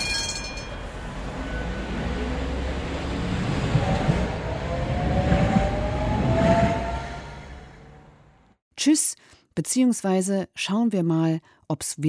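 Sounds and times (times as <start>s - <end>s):
Tatra tram running on rails in Berlin: 0.0s - 8.6s
speech: 8.8s - 12.0s.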